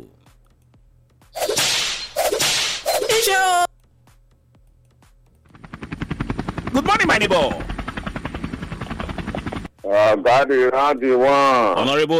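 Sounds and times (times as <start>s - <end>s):
koboko whip lashes cracking: 1.4s - 3.3s
speech: 6.8s - 7.7s, 9.9s - 12.1s.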